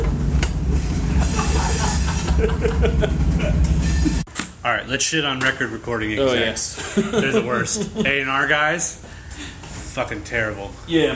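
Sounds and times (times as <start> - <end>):
train rumbling past: 0.0 - 4.3
high metallic squeal of passing train: 0.8 - 2.4, 3.7 - 4.3
laughter: 0.8 - 4.3, 6.7 - 8.3
speech: 4.7 - 9.0, 10.0 - 11.1.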